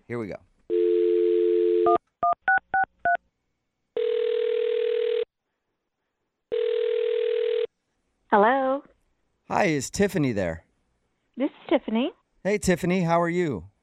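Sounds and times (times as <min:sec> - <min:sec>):
speech: 0:00.1 - 0:00.5, 0:08.3 - 0:08.6, 0:09.6 - 0:10.6, 0:11.7 - 0:13.7
steady telephone dial tone: 0:00.7 - 0:02.0, 0:04.0 - 0:05.3, 0:06.5 - 0:07.7.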